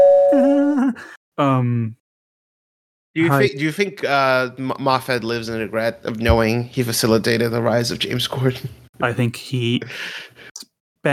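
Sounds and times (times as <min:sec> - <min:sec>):
voice imitating a doorbell chime with two sung notes: 0:00.0 - 0:00.8
speech: 0:00.3 - 0:02.0, 0:03.2 - 0:10.4.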